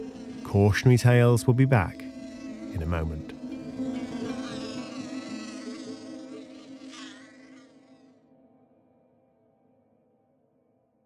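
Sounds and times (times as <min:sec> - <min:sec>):
mosquito buzzing: 0:00.0 - 0:08.4
speech: 0:00.5 - 0:02.1, 0:02.8 - 0:03.4.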